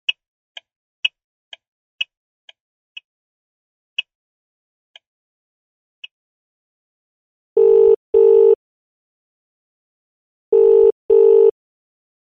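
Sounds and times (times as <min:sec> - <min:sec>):
phone outgoing call ringing tone: 0:07.6 - 0:08.6, 0:10.5 - 0:11.6.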